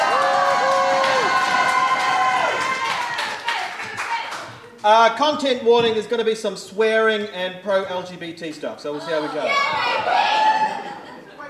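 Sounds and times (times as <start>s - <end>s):
audience cheers and whoops: 0.0s - 4.4s, 9.7s - 11.0s
audience applauding: 0.0s - 4.8s
speech: 4.8s - 10.7s
laughter: 10.2s - 11.4s.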